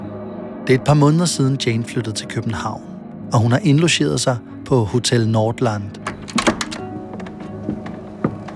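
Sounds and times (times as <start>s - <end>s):
speech: 0.7s - 6.1s
hotel room door opening with thunks and clicks: 6.0s - 8.5s.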